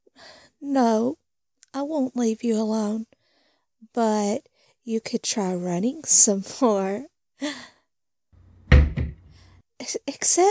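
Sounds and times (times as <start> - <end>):
speech: 0.6 - 3.2, 3.9 - 7.7, 9.8 - 10.4
locked door rattling: 8.6 - 9.4.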